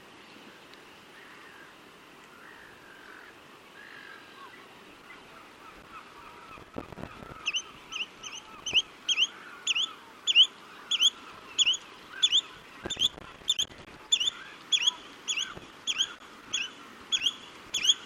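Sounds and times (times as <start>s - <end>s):
Spotted redshank calling a sharp chu-it whistle in flight: 7.4s - 18.0s.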